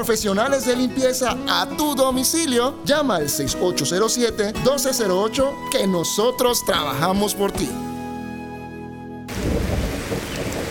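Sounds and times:
speech: 0:00.0 - 0:07.9
heavy rain pouring: 0:09.3 - 0:10.6.

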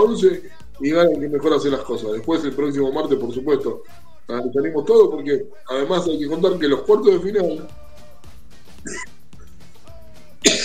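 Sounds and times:
speech: 0:00.0 - 0:07.8, 0:08.8 - 0:09.1
person coughing: 0:08.9 - 0:09.1, 0:10.4 - 0:10.6.

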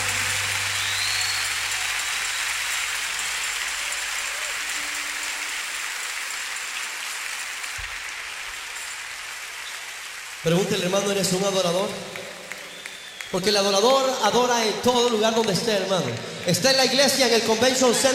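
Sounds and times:
large crowd applauding loudly: 0:00.0 - 0:18.1
speech: 0:10.4 - 0:12.1, 0:13.3 - 0:18.1.

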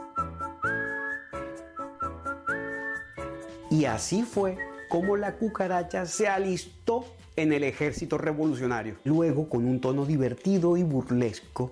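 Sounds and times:
bright lilting whistled melody: 0:00.0 - 0:06.7
bouncy accompaniment: 0:00.0 - 0:11.6
speech: 0:03.7 - 0:11.7.

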